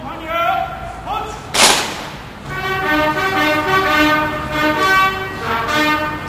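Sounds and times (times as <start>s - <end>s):
sharp crack: 1.5s - 2.6s
military trumpet call outdoors at a farewell ceremony for the president: 1.6s - 6.2s.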